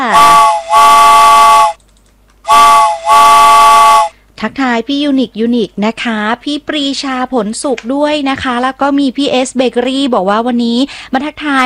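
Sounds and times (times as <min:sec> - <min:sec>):
steam train whistle blowing: 0:00.0 - 0:01.8, 0:02.5 - 0:04.2
speech: 0:04.4 - 0:11.6.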